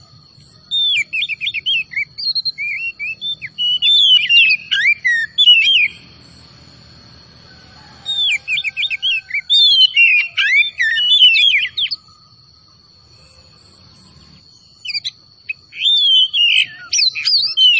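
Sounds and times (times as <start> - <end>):
Oriental magpie-robin singing vigorously with whistled phrases and chirps: 0.5 - 6.4, 8.0 - 12.0, 14.7 - 17.7.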